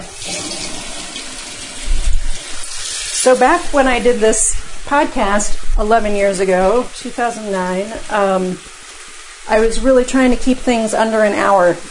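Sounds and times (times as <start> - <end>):
fresh water pouring over soaking rice: 0.1 - 3.8
speech: 3.2 - 8.7, 9.5 - 11.8.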